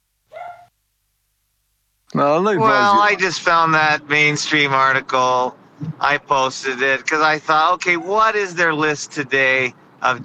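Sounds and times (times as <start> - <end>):
single sharp dog bark: 0.3 - 0.7
speech: 2.1 - 10.2.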